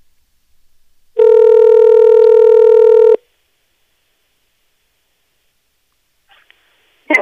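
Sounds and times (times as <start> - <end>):
cell phone keypad tone while dialing: 1.2 - 3.2
brief rustle: 6.3 - 6.6.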